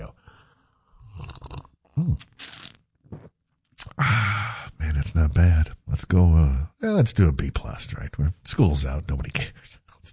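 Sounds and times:
slurping a morning drink: 0:01.0 - 0:03.3
wet mouth noises: 0:01.0 - 0:03.9
speech: 0:02.0 - 0:02.4, 0:05.0 - 0:10.1.

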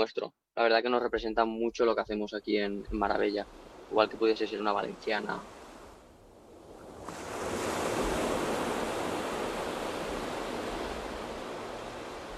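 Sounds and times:
speech: 0:00.0 - 0:05.6
sea waves breaking on the shore in the Valencian Community, Spain: 0:02.9 - 0:12.3.

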